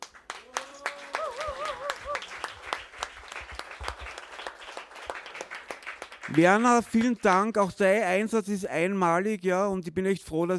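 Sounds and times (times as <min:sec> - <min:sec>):
audience applauding: 0:00.0 - 0:07.7
speech: 0:06.3 - 0:10.5.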